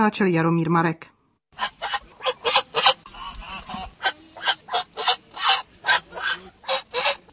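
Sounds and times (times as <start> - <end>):
speech: 0.0 - 1.8
flock of geese honking at a goose festival exhibition: 1.6 - 7.3.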